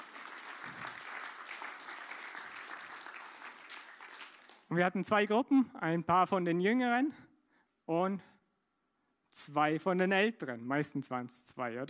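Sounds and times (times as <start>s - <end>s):
audience applause: 0.0s - 4.7s
speech: 4.7s - 7.3s, 7.9s - 8.3s, 9.4s - 11.8s.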